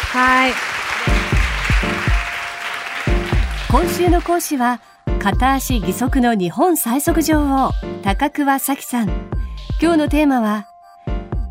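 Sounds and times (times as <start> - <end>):
audience at a lecture class applauding: 0.0 - 4.6
speech: 0.1 - 1.2, 3.7 - 10.7.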